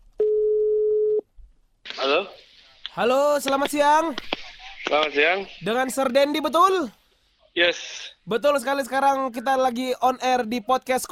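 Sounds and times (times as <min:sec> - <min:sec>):
faint low noise: 0:00.0 - 0:11.1
electronic telephone ringback tone while placing a call: 0:00.2 - 0:01.2
speech: 0:03.0 - 0:04.3, 0:04.9 - 0:07.0, 0:07.6 - 0:11.1.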